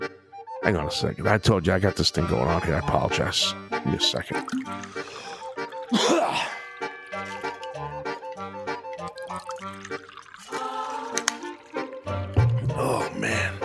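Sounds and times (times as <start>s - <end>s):
steady music: 0.0s - 13.6s
speech: 0.6s - 5.0s
small drinking sounds: 2.4s - 13.6s
water pouring during a water break: 4.0s - 12.7s
person clearing throat: 5.9s - 6.6s.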